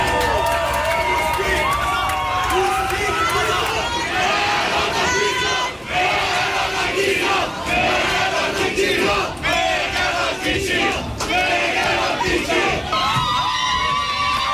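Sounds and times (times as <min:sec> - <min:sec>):
crowd cheering in a metro: 0:00.0 - 0:14.5
crowd chanting a political slogan in a metro: 0:02.4 - 0:13.4.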